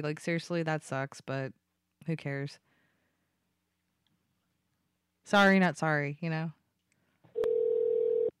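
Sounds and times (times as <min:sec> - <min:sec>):
speech: 0:00.0 - 0:02.7, 0:05.3 - 0:06.6
ringback tone of an outgoing phone call: 0:07.4 - 0:08.3.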